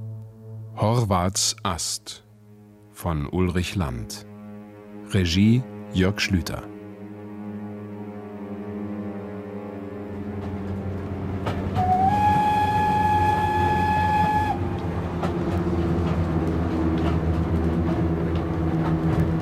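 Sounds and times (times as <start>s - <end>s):
speech: 0.8s - 2.2s, 3.0s - 4.3s, 5.1s - 6.8s
train running on rails toward Paris: 8.0s - 19.4s
sustained whistle-like tone: 11.8s - 14.7s.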